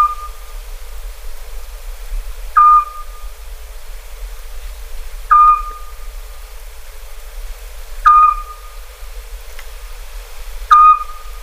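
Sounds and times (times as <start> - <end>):
Eurasian scops owl whistling short pure notes: 0.0 - 0.5, 2.6 - 3.3, 5.3 - 6.1, 8.0 - 8.8, 10.7 - 11.4.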